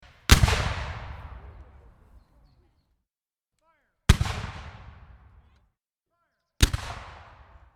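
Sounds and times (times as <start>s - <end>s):
howitzer cannon fire: 0.0s - 2.2s, 4.1s - 5.5s, 6.6s - 7.7s.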